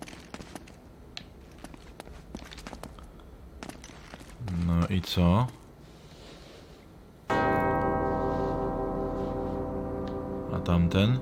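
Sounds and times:
speech: 4.9 - 5.6, 10.7 - 11.2
large bell struck and ringing: 7.3 - 11.2.

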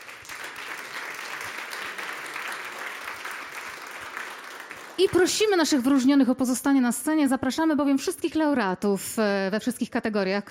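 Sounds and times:
audience applause at an awards ceremony: 0.0 - 6.1
speech: 5.0 - 10.5.

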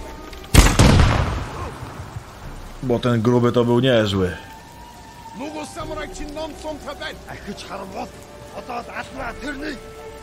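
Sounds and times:
video game explosive arrow detonating: 0.5 - 2.3
speech: 2.8 - 4.5, 5.7 - 10.0.

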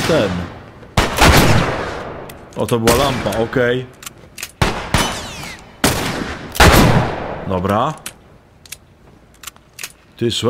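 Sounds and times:
gunshots from a slow-firing weapon in a video game: 0.0 - 3.8, 4.6 - 7.6
speech: 0.1 - 0.5, 2.6 - 4.0, 7.5 - 8.1, 10.2 - 10.4.

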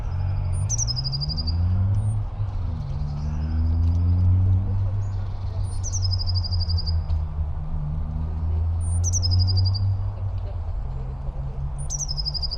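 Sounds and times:
Eurasian blue tit giving nervous territorial trilled song in a park: 0.0 - 2.2, 5.0 - 7.1, 8.8 - 10.0, 11.8 - 12.5
loud low vehicle rumble: 0.0 - 12.5.

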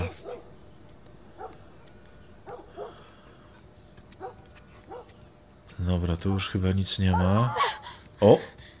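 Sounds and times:
steady hiss: 0.0 - 8.7
dog barking: 1.4 - 1.6, 2.4 - 3.0, 4.2 - 5.2, 7.1 - 7.7
speech: 5.8 - 8.6.

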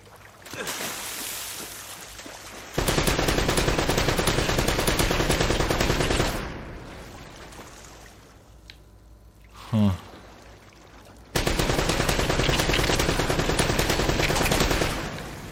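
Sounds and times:
automatic gunfire bursts in a video game: 2.8 - 6.5, 11.4 - 15.2.

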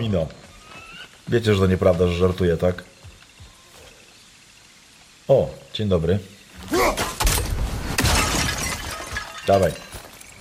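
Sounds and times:
speech: 0.0 - 0.5, 1.3 - 2.9, 5.3 - 6.9, 9.5 - 9.9
plate falling and shattering: 6.6 - 10.2.

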